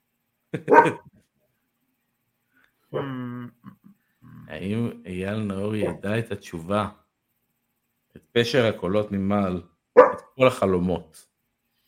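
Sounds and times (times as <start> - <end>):
speech: 0.5 - 1.1, 2.9 - 3.2, 4.5 - 7.0, 8.4 - 11.3
dog barking: 0.6 - 1.1, 5.8 - 6.0, 10.0 - 10.4
dog yipping: 0.7 - 1.0, 10.0 - 10.3.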